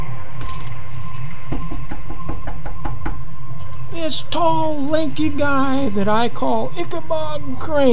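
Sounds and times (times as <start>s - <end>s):
low rumble: 0.0s - 7.9s
knocking on a door: 1.5s - 3.4s
speech: 4.0s - 7.9s.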